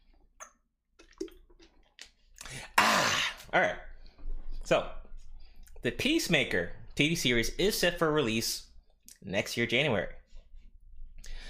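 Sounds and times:
person taking quiet sips of water: 0:00.0 - 0:03.5
soft slurps and a swallow while drinking water: 0:00.4 - 0:02.6
speech: 0:03.6 - 0:03.9, 0:04.7 - 0:05.0, 0:05.8 - 0:10.2.

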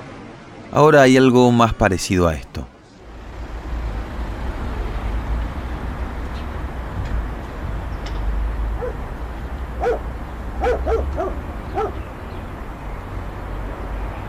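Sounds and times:
faint city hum in Buenos Aires: 0:00.0 - 0:14.2
wind: 0:00.0 - 0:14.2
speech: 0:00.7 - 0:02.7
dogs barking in Buenos Aires: 0:08.7 - 0:12.2.

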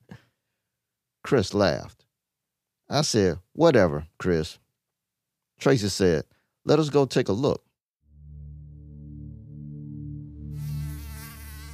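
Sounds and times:
speech: 0:01.3 - 0:02.0, 0:02.9 - 0:04.6, 0:05.6 - 0:07.6
mosquitoes buzzing: 0:10.4 - 0:11.7.

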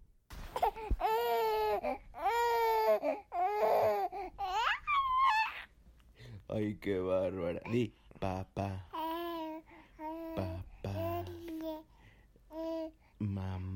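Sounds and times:
four-month-old infant babbling: 0:00.6 - 0:05.7, 0:08.9 - 0:11.9, 0:12.5 - 0:13.0
speech: 0:06.6 - 0:08.9.

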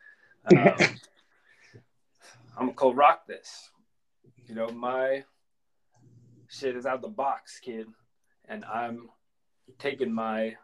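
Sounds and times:
speech: 0:00.4 - 0:01.0, 0:02.6 - 0:03.7, 0:04.5 - 0:05.3, 0:06.5 - 0:10.6
short gravelly throat clearing: 0:00.5 - 0:01.0.

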